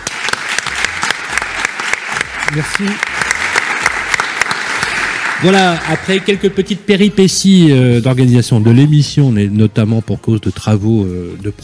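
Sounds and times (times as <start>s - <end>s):
crowd applauding the mayor of Reims in France: 0.0s - 6.5s
speech: 2.5s - 3.2s, 5.4s - 11.6s.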